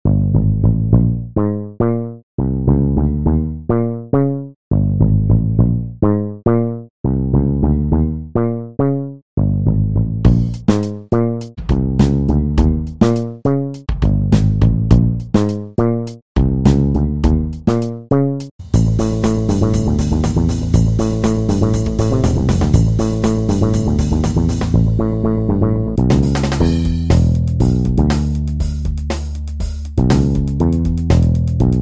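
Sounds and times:
electric bass playing funk groove: 0:00.0 - 0:08.6, 0:09.4 - 0:31.8.

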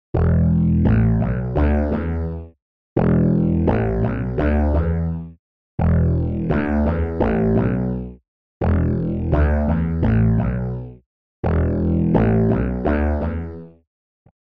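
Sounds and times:
mellow sweeping wet bass: 0:00.2 - 0:02.3, 0:03.0 - 0:05.2, 0:05.8 - 0:10.9, 0:11.5 - 0:13.4.

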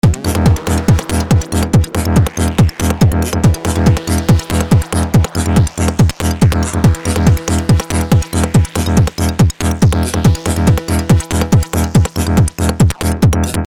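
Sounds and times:
techno music: 0:00.0 - 0:13.6.

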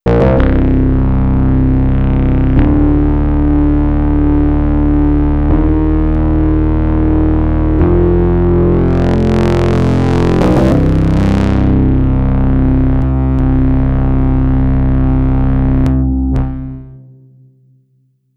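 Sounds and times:
FM burning bass: 0:00.0 - 0:17.0.

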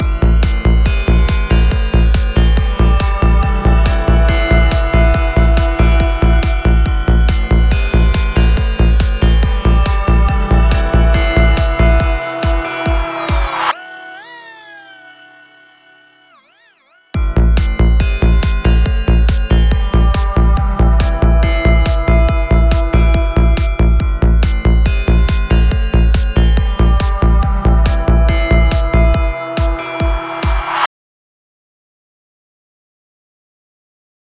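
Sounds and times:
synth pads: 0:00.0 - 0:30.9.

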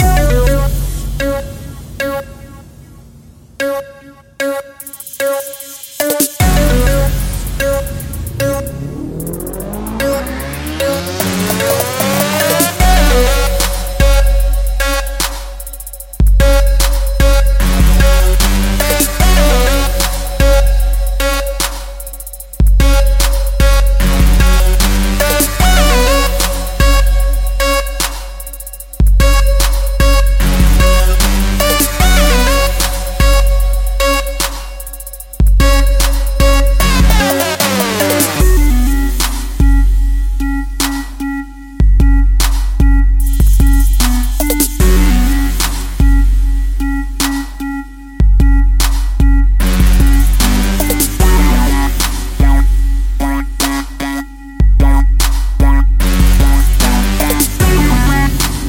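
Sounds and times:
trap music: 0:00.0 - 0:58.6.

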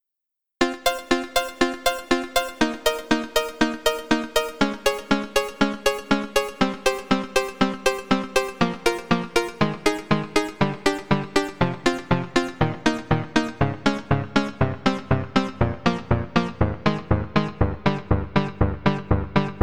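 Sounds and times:
short plucked arpeggio: 0:00.6 - 0:19.6.

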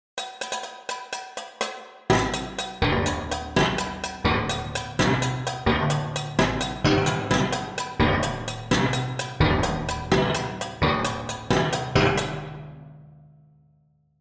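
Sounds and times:
pitched metal sound: 0:02.1 - 0:12.5.

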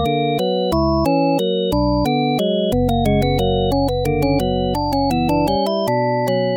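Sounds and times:
percussive organ: 0:00.1 - 0:06.4.

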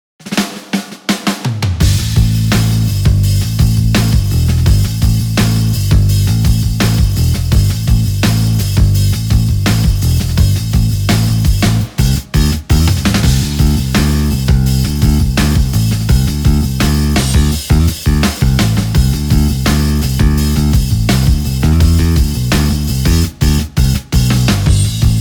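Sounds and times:
classic pick bass: 0:01.8 - 0:25.1.

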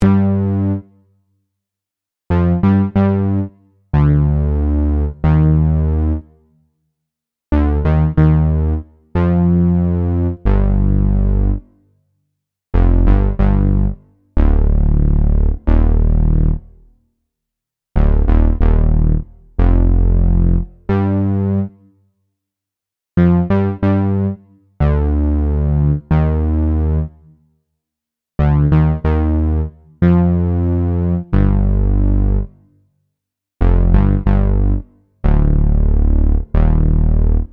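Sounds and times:
analog bass: 0:02.3 - 0:06.3, 0:07.5 - 0:11.6, 0:12.8 - 0:16.9, 0:18.0 - 0:21.7, 0:23.2 - 0:27.2, 0:28.4 - 0:32.5, 0:33.6 - 0:37.5.

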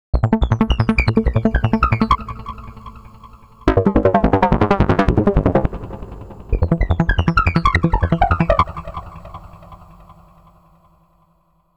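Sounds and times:
step sequencer pattern: 0:00.2 - 0:09.5.

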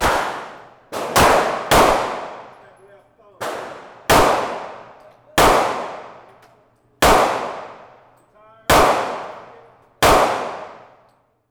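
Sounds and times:
gunfire in a shootout: 0:00.0 - 0:02.6, 0:03.4 - 0:06.4, 0:07.0 - 0:08.0, 0:08.7 - 0:11.0.

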